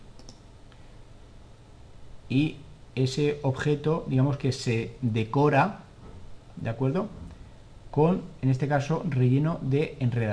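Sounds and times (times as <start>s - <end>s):
faint steady hum: 0.0s - 10.3s
computer mouse clicks: 0.1s - 0.5s
speech: 2.3s - 5.8s, 6.6s - 7.2s, 7.9s - 10.3s.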